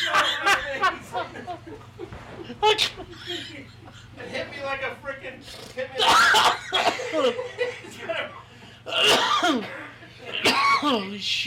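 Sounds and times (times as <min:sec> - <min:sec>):
laughter: 0:00.0 - 0:08.8
person coughing: 0:06.0 - 0:07.4, 0:08.9 - 0:11.2.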